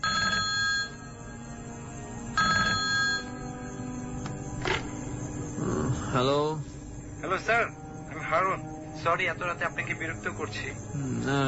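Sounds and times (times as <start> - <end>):
phone ringing with trilling electronic ringing: 0.0 - 1.1, 2.4 - 3.7
steady hiss: 0.9 - 2.4, 3.2 - 11.4
speech: 7.4 - 11.4.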